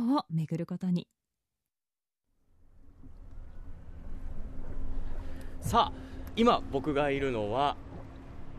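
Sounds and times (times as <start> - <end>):
speech: 0.2 - 1.2, 5.6 - 7.8
soft water wash on a river: 2.8 - 8.5
small oar-rowed sightseeing boat moving along a river: 4.0 - 8.5.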